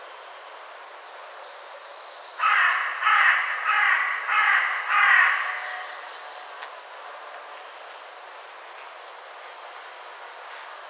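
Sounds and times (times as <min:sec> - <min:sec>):
Carrion crow Corvus corone cawing: 0:02.4 - 0:06.1.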